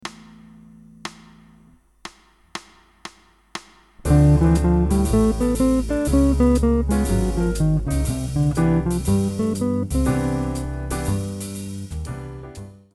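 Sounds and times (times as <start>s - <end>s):
guitar playing a scale exercise: 0.0s - 1.7s, 4.0s - 11.2s.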